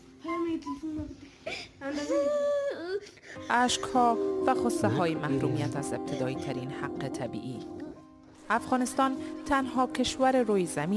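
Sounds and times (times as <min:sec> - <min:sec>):
Afghan girl barred from education sobbing and whimpering: 0:00.2 - 0:06.4
speech: 0:03.5 - 0:07.8, 0:08.5 - 0:10.9.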